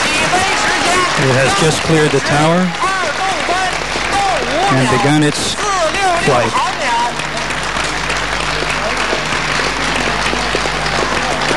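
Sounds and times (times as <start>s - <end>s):
faint voices and cheers in a mission control room: 0.0s - 11.5s
large group applauding in a mission control room: 0.0s - 11.5s
speech: 1.2s - 2.8s, 4.7s - 6.7s.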